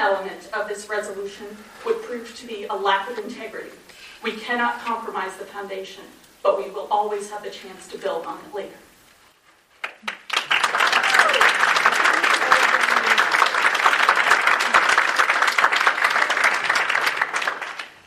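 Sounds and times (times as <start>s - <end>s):
speech: 0.0s - 8.9s
sizable audience applauding at a council meeting: 9.8s - 18.0s.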